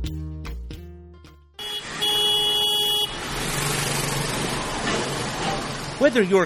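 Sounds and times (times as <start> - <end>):
rush of traffic engine and road noise: 1.5 - 6.4
car horn toots and long blaring honk: 1.6 - 3.3
speech: 6.0 - 6.4.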